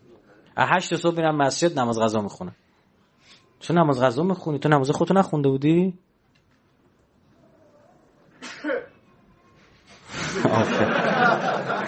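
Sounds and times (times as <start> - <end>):
speech: 0.6 - 2.6, 3.6 - 6.1
person sneezing: 8.4 - 9.0
laughter: 10.1 - 11.8.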